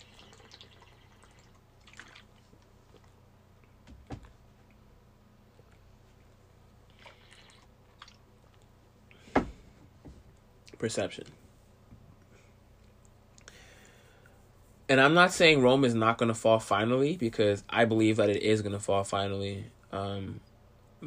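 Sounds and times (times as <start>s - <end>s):
sipping water with slurps and swallows: 0.0s - 3.2s, 6.8s - 8.8s
speech: 10.8s - 11.4s, 14.9s - 21.0s.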